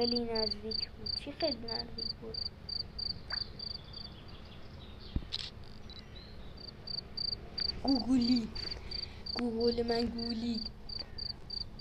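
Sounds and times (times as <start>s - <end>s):
speech: 0.0s - 2.7s, 7.8s - 10.8s
grasshopper chirping in short high-pitched pulses: 0.0s - 4.1s, 6.6s - 11.7s
low rumble: 0.0s - 11.7s.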